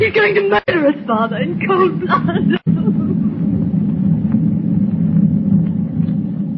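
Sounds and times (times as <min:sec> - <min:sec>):
thunder rolling over the ocean: 0:00.0 - 0:06.5
speech: 0:00.1 - 0:03.6.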